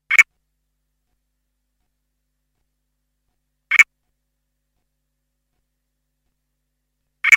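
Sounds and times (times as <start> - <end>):
Pseudophryne dendyi Southern Toadlet calling: 0.0 - 0.3, 3.7 - 3.9.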